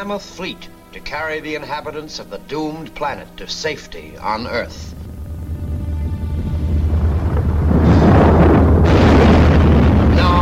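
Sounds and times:
speech: 0:00.0 - 0:05.0
underground gas explosions setting off volcanoes: 0:04.6 - 0:10.4.

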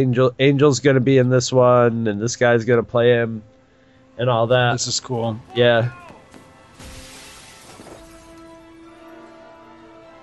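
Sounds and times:
speech: 0:00.0 - 0:03.5, 0:04.2 - 0:06.1
glass shattering in a loud crash: 0:06.7 - 0:08.9
tinkling glass shards with sharp clinks: 0:07.0 - 0:08.6.

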